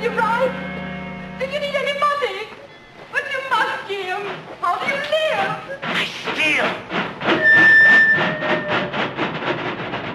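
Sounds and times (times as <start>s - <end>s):
train rolling along the tracks with clickety-clack: 1.4s - 10.1s
sustained whistle-like tone: 7.4s - 8.9s.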